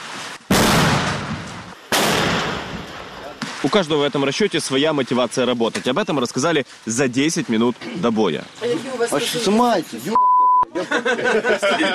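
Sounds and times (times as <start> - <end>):
mortar shots with long rumbling tails: 0.0 - 3.7
speech: 3.6 - 11.9
laughter: 10.7 - 11.9.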